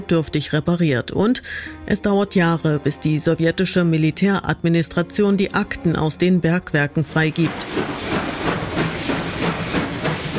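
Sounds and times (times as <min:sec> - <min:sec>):
speech: 0:00.0 - 0:08.1
steam train chugging: 0:07.3 - 0:10.3.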